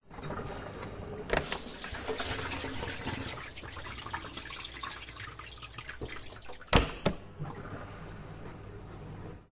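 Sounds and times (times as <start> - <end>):
household dishwasher operating: 0.0 - 9.5
household dishwasher door opening and closing: 0.2 - 2.6, 6.0 - 9.4
water dripping inside a dishwasher: 1.6 - 6.8.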